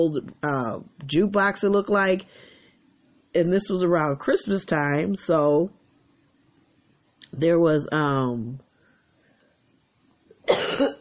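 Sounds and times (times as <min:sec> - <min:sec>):
speech: 0:00.0 - 0:02.5, 0:03.3 - 0:05.8, 0:07.3 - 0:08.6
harsh cough: 0:10.4 - 0:10.9.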